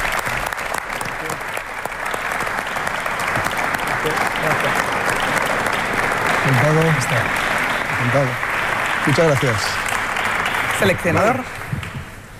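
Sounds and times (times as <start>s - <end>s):
sizable audience applauding: 0.0s - 12.3s
speech: 6.5s - 8.4s, 9.0s - 9.9s, 10.8s - 11.8s.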